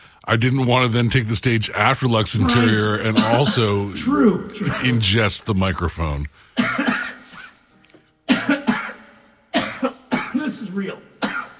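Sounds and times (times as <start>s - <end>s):
speech: 0.2s - 6.8s
person coughing: 2.4s - 5.0s, 6.6s - 7.6s, 8.3s - 9.0s, 9.6s - 10.6s, 11.2s - 11.5s.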